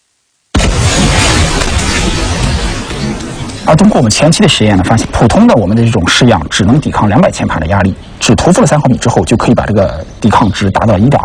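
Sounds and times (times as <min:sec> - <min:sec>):
explosion in a detonation tube with roaring rumble: 0:00.6 - 0:05.7
speech: 0:03.7 - 0:11.2.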